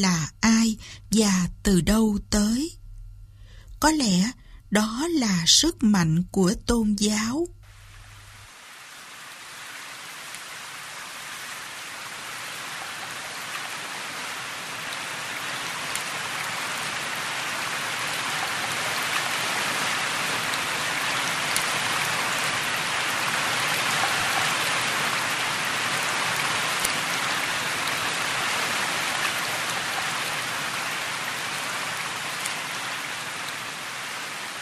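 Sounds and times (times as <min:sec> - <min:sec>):
speech: 0:00.0 - 0:02.8, 0:03.8 - 0:07.6
heavy rain pattering on a tin roof: 0:07.7 - 0:34.5.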